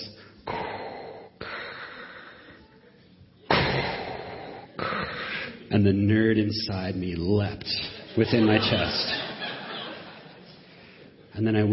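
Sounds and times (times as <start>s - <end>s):
person imitating heavy mechanical respirator breathing: 0.0s - 2.8s, 3.6s - 5.7s
speech: 5.7s - 9.2s, 11.4s - 11.7s
laughter: 7.7s - 11.3s.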